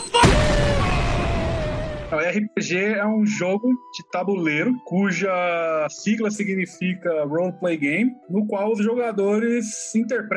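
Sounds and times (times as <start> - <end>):
explosion sound effect: 0.0 - 2.2
speech: 2.2 - 10.3.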